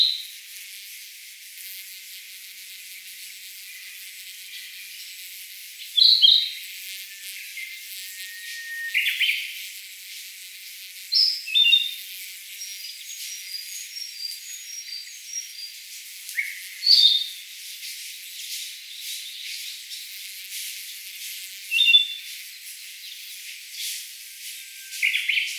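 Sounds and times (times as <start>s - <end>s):
Sakhalin leaf warbler singing short thin high phrases: 3.0s - 9.6s, 11.2s - 20.2s, 20.8s - 25.5s.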